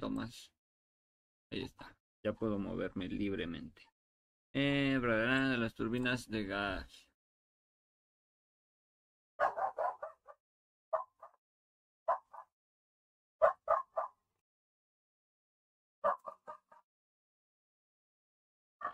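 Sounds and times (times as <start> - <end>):
speech: 0.1 - 0.6, 1.5 - 3.9, 4.5 - 7.1
female dog barking: 9.4 - 11.4, 12.1 - 12.6, 13.4 - 14.3, 16.0 - 16.8.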